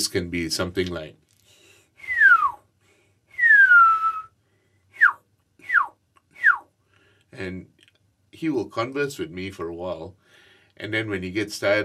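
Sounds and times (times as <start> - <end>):
speech: 0.1 - 1.2, 7.4 - 7.7, 8.4 - 10.2, 10.8 - 11.8
person whistling in imitation of a hill myna: 2.0 - 2.7, 3.3 - 4.4, 5.0 - 6.7.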